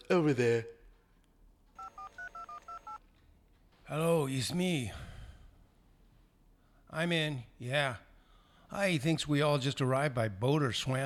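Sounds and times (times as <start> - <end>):
speech: 0.1 - 0.8, 3.9 - 5.1, 6.9 - 8.1, 8.7 - 11.0
telephone keypad tone beeps while dialling: 1.8 - 3.0.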